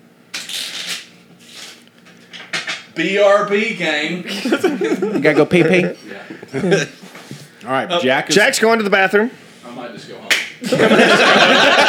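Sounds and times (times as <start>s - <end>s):
cards being shuffled: 0.4s - 2.0s
speech: 3.0s - 7.0s, 7.7s - 11.8s
laughter: 4.2s - 7.0s, 10.6s - 11.8s.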